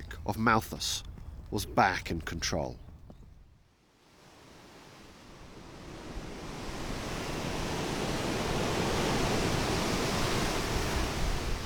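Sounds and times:
speech: 0.3s - 2.8s
Indian Ocean waves breaking on the beach at Chennai India: 3.9s - 11.6s.

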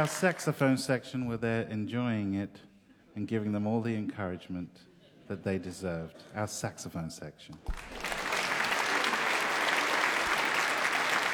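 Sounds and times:
large audience applauding: 0.0s - 0.4s, 7.7s - 11.3s
speech: 0.0s - 8.1s.

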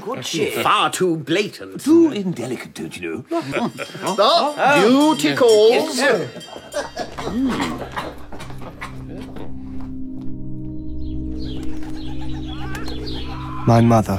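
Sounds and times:
speech: 0.1s - 8.2s, 13.7s - 14.1s
laughter: 3.3s - 4.6s, 6.0s - 9.5s, 12.2s - 13.6s
many birds chirping indoors: 6.3s - 14.1s
many birds cooing indoors: 6.9s - 9.9s, 10.8s - 14.1s.

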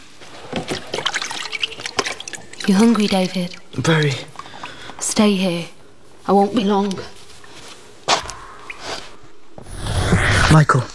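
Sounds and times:
water trickling and splashing while washing hands: 0.0s - 10.6s
speech: 2.7s - 4.3s, 5.2s - 7.2s, 10.5s - 10.9s.

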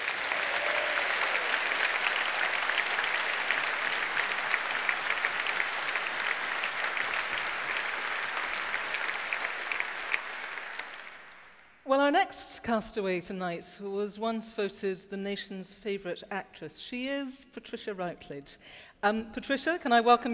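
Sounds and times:
sustained applause from a sizable audience: 0.0s - 11.8s
speech: 12.1s - 20.3s.

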